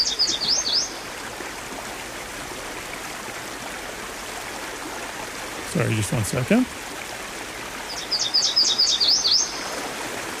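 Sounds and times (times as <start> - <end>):
yellow warbler singing: 0.0 - 1.0, 7.9 - 9.7
flowing water: 0.0 - 10.3
speech: 5.7 - 6.8.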